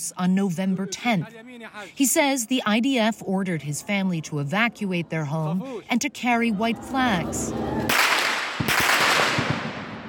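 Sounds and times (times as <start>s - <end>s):
speech: 0.1s - 8.1s
gunshots: 7.9s - 10.0s.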